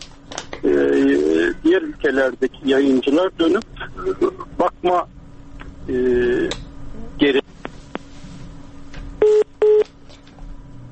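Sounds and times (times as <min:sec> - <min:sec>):
speech: 0:01.6 - 0:05.2, 0:05.8 - 0:06.6, 0:07.2 - 0:07.4
electronic telephone line tones after a phone line failure: 0:09.2 - 0:09.9.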